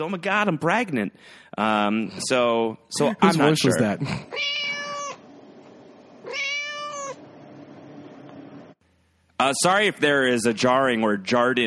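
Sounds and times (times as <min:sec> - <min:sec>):
speech: 0:00.0 - 0:04.6, 0:09.4 - 0:11.6
cat meowing with a strained, wailing tone: 0:04.3 - 0:05.2, 0:06.2 - 0:07.2.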